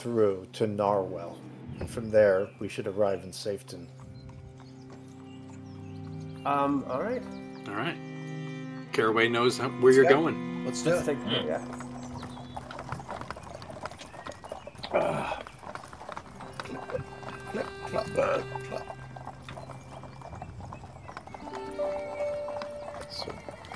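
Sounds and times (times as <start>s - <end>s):
speech: 0.0s - 4.0s, 6.4s - 8.1s, 8.9s - 11.8s, 14.9s - 15.5s, 17.5s - 19.0s
horse hooves clip-clopping on a trail: 1.7s - 7.7s, 10.2s - 23.7s
horse whinnying: 10.0s - 23.7s.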